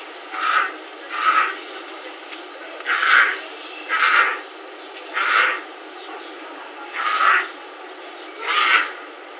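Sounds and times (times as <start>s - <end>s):
female Felis concolor puma calling her cubs: 0.3s - 1.6s, 2.8s - 4.5s, 5.1s - 5.7s, 6.9s - 7.6s, 8.4s - 9.0s.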